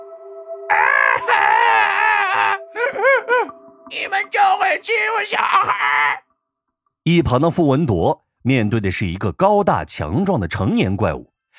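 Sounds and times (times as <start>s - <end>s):
young monster boy with a crow's head crying: 0.7s - 3.6s, 5.3s - 6.2s
speech: 3.9s - 6.2s, 7.1s - 11.5s.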